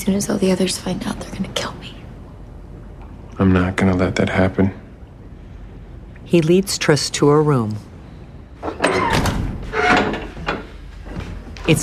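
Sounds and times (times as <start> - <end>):
speech: 0.0 - 2.0, 3.4 - 4.8, 6.3 - 7.9
door pushed shut with sliding scrape and solid clunk: 8.6 - 10.7.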